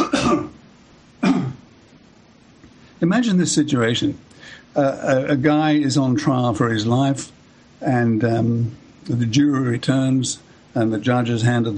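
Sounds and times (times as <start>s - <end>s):
person coughing: 0.0s - 0.6s, 1.2s - 1.6s
speech: 0.3s - 0.6s, 3.0s - 11.7s.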